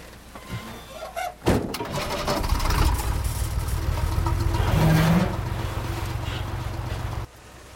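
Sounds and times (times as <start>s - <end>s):
old limousine engine turning over and rumbling: 1.8s - 7.6s.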